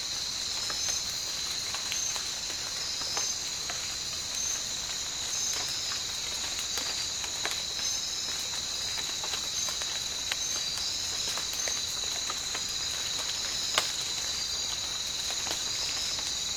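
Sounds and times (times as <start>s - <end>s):
dense insect chorus in a tropical rainforest: 0.0s - 16.5s.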